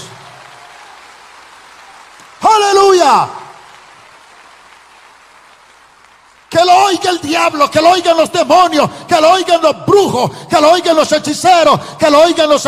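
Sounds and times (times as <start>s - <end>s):
audience applauding: 0.0s - 8.2s
speech: 3.1s - 3.4s, 6.9s - 12.6s.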